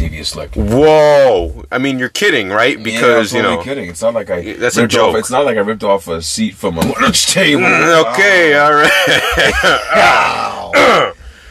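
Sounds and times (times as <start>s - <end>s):
speech: 0.2s - 11.1s
laughter: 8.6s - 10.7s
man clearing his throat: 9.8s - 11.2s.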